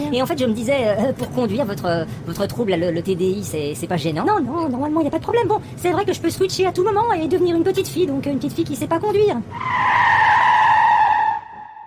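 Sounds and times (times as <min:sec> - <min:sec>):
low noise: 0:00.0 - 0:11.3
speech: 0:00.1 - 0:10.2
car tires screeching under hard braking: 0:09.5 - 0:11.8.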